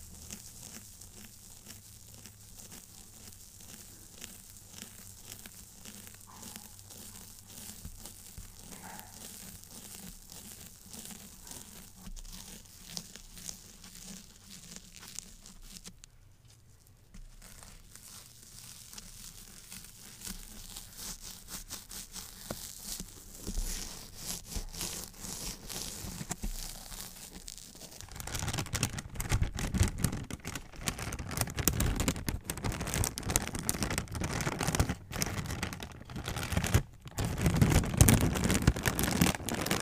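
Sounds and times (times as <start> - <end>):
plastic and bubble wrap crinkling and rustling: 0.0 - 39.8.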